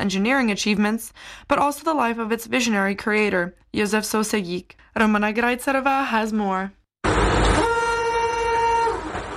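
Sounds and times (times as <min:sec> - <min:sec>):
speech: 0:00.0 - 0:06.8
Tatra train horn blast: 0:07.1 - 0:09.2.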